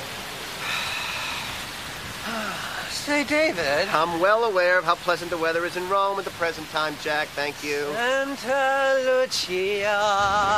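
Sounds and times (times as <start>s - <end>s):
steady rain: 0.0s - 10.5s
speech: 3.1s - 10.5s.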